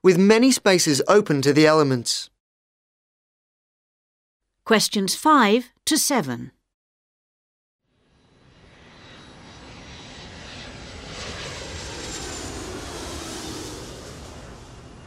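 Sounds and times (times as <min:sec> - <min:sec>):
speech: 0:00.0 - 0:02.3, 0:04.7 - 0:06.6
airplane engine roar with faint high whine passing overhead: 0:07.9 - 0:15.0.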